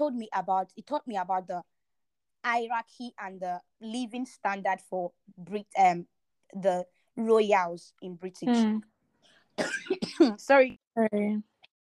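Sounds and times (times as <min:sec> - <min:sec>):
speech: 0:00.0 - 0:01.7, 0:02.4 - 0:08.9, 0:09.6 - 0:11.5
person coughing: 0:09.6 - 0:10.4.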